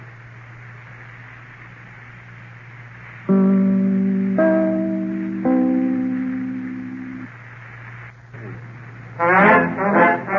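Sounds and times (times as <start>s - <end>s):
band playing a short theme of sustained loud chords: 3.3s - 7.4s, 8.4s - 10.3s.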